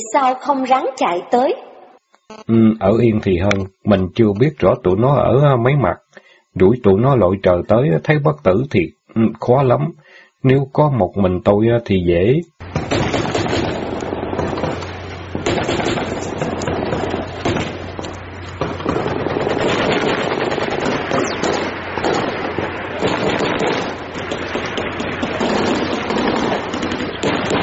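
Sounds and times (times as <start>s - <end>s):
speech: 0.0s - 1.7s, 2.3s - 6.0s, 6.6s - 12.8s
heavy gunfire barrage of rapid shots and bursts: 12.6s - 27.6s.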